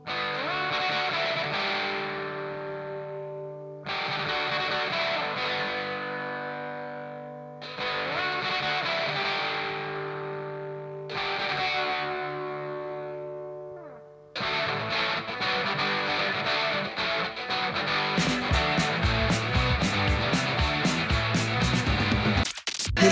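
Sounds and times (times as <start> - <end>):
ringing distorted guitar chords: 0.0 - 23.1
punk rock band playing loud and fast: 18.0 - 23.1
driving drums: 18.2 - 23.1.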